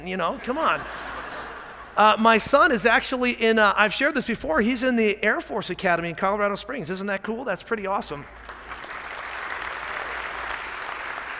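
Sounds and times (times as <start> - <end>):
speech: 0.0 - 1.2, 2.0 - 8.4
laughter: 0.3 - 2.4
audience applauding: 8.4 - 11.3.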